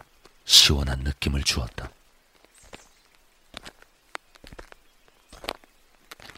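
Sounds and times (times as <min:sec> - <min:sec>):
speech: 0:00.7 - 0:02.0
footsteps crunching along a mountain trail: 0:01.7 - 0:06.3.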